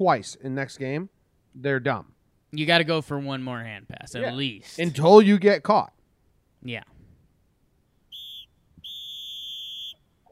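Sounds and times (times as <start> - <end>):
speech: 0.0 - 6.0, 6.6 - 6.9
shrill referee whistle blowing for halftime: 8.1 - 10.1.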